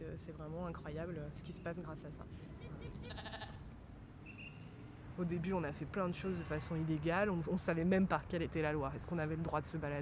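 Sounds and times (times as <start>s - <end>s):
speech: 0.0s - 3.6s, 5.2s - 10.0s
sheep bleating: 3.0s - 3.6s.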